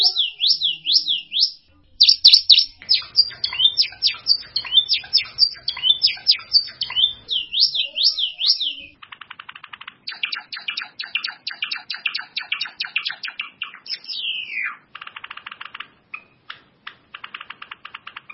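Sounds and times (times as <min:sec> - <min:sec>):
long swooping bird whistle: 0:00.0 - 0:09.0, 0:10.1 - 0:14.8
bird singing fast high chirps and rattling notes: 0:00.0 - 0:18.3.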